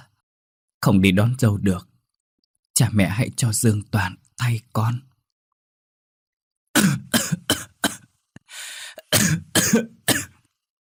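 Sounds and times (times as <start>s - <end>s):
speech: 0.8s - 1.9s, 2.8s - 5.1s, 9.3s - 10.0s
young man coughing heavily: 6.8s - 8.1s, 9.0s - 10.5s
raspy breath: 8.4s - 9.1s.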